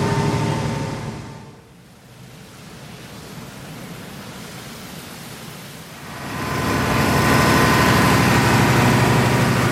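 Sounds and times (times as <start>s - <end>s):
combined heat and power plant engine driving a generator: 0.0s - 1.7s, 6.0s - 9.7s
low hum: 0.0s - 1.8s, 6.0s - 9.7s.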